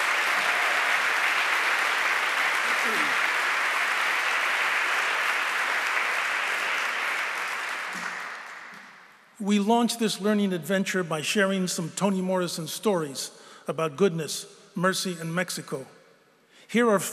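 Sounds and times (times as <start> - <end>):
sustained applause from a sizable audience welcoming new students: 0.0 - 9.0
speech: 9.4 - 16.0, 16.7 - 17.1.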